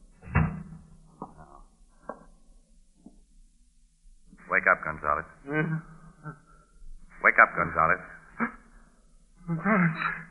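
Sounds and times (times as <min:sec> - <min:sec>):
door swinging shut with a solid thud: 0:00.2 - 0:00.8
speech: 0:04.7 - 0:06.4, 0:07.3 - 0:08.6, 0:09.5 - 0:10.2.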